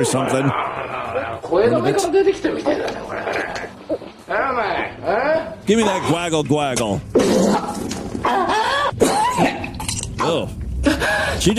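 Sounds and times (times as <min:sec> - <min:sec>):
speech: 0:00.0 - 0:08.6, 0:10.2 - 0:11.5
woman coughing and retching wetly: 0:07.2 - 0:10.3.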